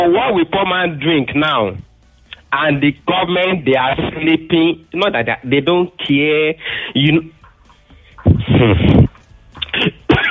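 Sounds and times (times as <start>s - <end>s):
speech: 0.0s - 1.9s, 2.5s - 7.4s, 8.3s - 9.0s
loud sneeze: 8.3s - 10.2s.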